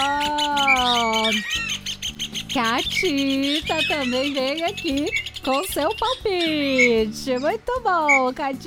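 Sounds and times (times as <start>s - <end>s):
small birds chirping and tweeting: 0.0s - 8.6s
speech: 2.6s - 8.6s.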